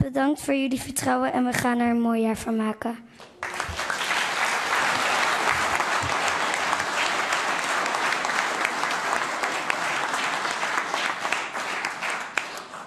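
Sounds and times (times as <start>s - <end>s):
speech: 0.1s - 3.8s
large crowd applauding after a speech: 3.2s - 12.8s.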